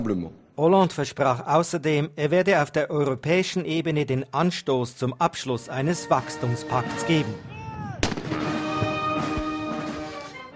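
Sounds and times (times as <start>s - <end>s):
speech: 0.0s - 7.5s
steady brass-like tones: 5.6s - 10.5s
ceremonial cannon salute blast: 8.0s - 9.5s.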